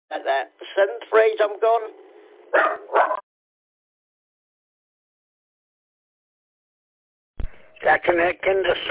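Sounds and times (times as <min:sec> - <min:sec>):
speech: 0:00.1 - 0:03.2, 0:07.8 - 0:08.8
dog barking: 0:02.5 - 0:03.2.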